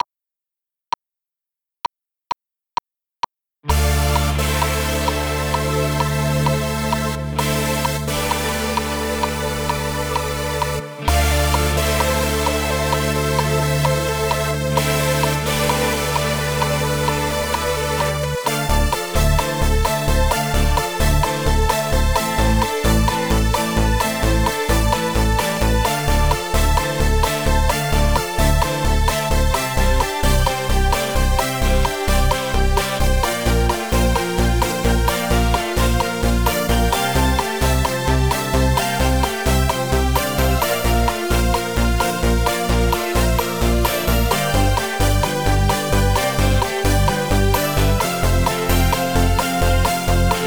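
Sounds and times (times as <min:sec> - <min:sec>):
post-disco keyboard: 0:03.6 - 0:50.4.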